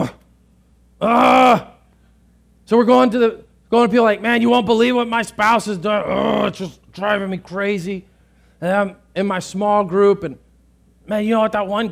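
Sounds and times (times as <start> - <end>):
speech: 1.0 - 1.6, 2.7 - 10.4, 11.1 - 11.8
person groaning: 1.0 - 1.8, 6.0 - 6.7.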